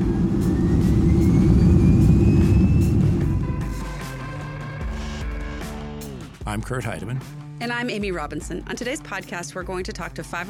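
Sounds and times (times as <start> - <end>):
airliner taking off from runway: 0.0 - 4.6
speech: 6.5 - 10.4.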